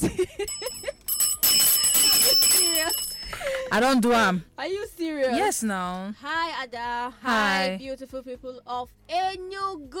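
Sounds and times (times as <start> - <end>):
bright metallic bell ringing: 0.4 - 3.9
speech: 3.8 - 4.5, 5.2 - 9.9.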